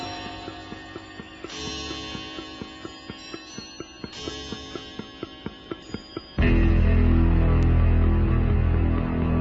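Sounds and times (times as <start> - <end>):
loud instrumental radio bumper music: 6.4 - 9.3.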